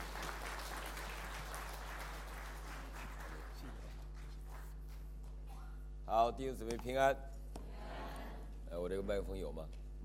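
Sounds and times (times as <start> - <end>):
audience applauding to welcome a pastor: 0.0 - 5.0
low electrical hum: 0.0 - 10.0
speech: 6.1 - 7.3, 8.7 - 9.8.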